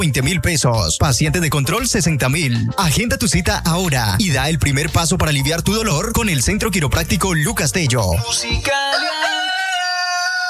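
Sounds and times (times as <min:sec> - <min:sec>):
speech: 0:00.0 - 0:09.3
rooster crowing: 0:08.8 - 0:10.4.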